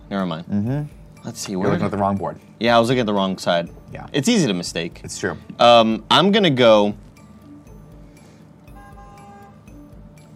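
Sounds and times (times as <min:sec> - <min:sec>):
speech: 0:00.1 - 0:07.1
car horn honks: 0:08.7 - 0:09.7.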